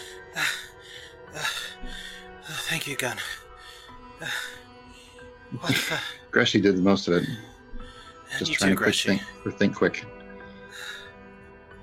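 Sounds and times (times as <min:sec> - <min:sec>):
heavy ragged breathing: 0:00.0 - 0:06.3, 0:07.2 - 0:08.6
speech: 0:02.7 - 0:03.4, 0:04.2 - 0:04.6, 0:05.5 - 0:07.5, 0:08.4 - 0:10.2
person speaking quietly: 0:05.6 - 0:07.4, 0:08.3 - 0:10.0.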